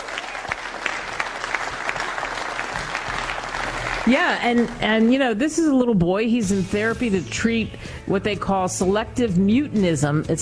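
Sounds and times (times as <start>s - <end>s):
sharp hand claps: 0.0s - 4.8s
crowd applauding: 0.0s - 5.1s
speech: 4.1s - 10.4s.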